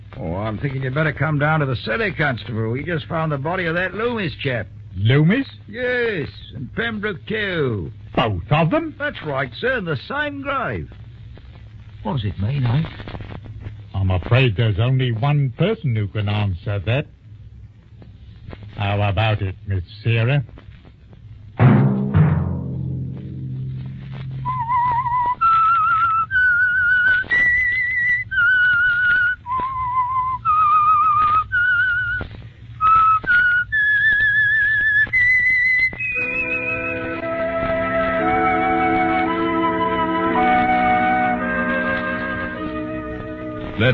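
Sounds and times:
speech: 0:00.2 - 0:11.0, 0:12.0 - 0:13.2, 0:14.0 - 0:17.2, 0:18.8 - 0:20.6
sustained orchestral chords: 0:21.6 - 0:25.4, 0:36.2 - 0:43.9
clear whistled theme melody: 0:24.4 - 0:32.2, 0:32.8 - 0:43.9.

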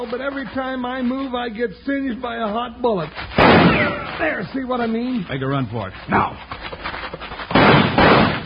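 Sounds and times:
speech: 0:00.0 - 0:07.2
wooden door slamming shut: 0:07.6 - 0:08.4.

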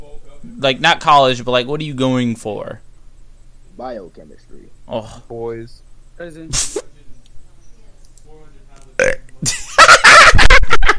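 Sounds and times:
speech: 0:00.6 - 0:02.8, 0:03.8 - 0:06.9
loud burp: 0:09.0 - 0:09.3
bright breathy laughter: 0:09.4 - 0:10.9.

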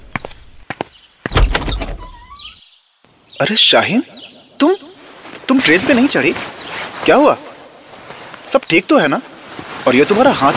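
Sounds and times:
door swinging open with a scraping rush: 0:01.3 - 0:02.6
speech: 0:03.4 - 0:04.9, 0:05.5 - 0:07.5, 0:08.5 - 0:10.5.

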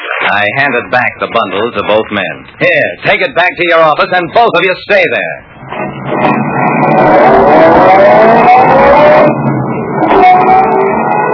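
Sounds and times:
speech: 0:00.3 - 0:05.5
car engine starting, revving and driving off: 0:05.4 - 0:11.3.

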